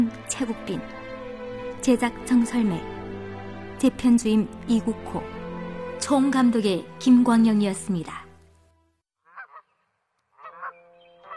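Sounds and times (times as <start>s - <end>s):
speech: 0.1s - 1.0s, 1.8s - 3.0s, 3.8s - 5.4s, 6.0s - 8.2s
goose honking: 10.4s - 11.3s.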